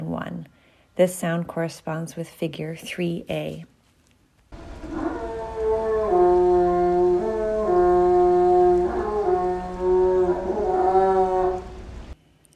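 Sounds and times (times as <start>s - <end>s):
speech: 0.2s - 3.7s
female northern elephant seal in-air vocalization: 4.6s - 12.2s.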